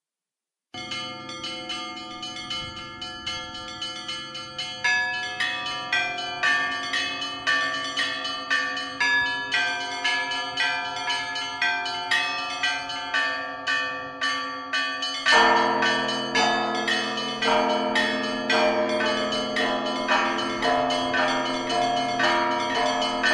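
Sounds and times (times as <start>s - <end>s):
Christmas bells ringing: 0.8s - 23.3s.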